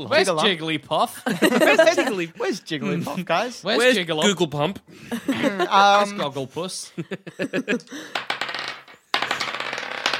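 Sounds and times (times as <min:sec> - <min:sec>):
speech: 0:00.0 - 0:08.3
laughter: 0:01.1 - 0:04.4, 0:05.0 - 0:08.1
many dice dropping and scattering: 0:08.1 - 0:10.1.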